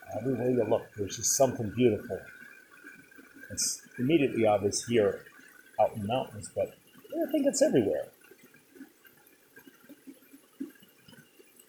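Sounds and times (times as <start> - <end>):
shallow mountain river water flowing around wading legs: 0.0 - 11.6
speech: 0.1 - 2.4, 3.5 - 8.2.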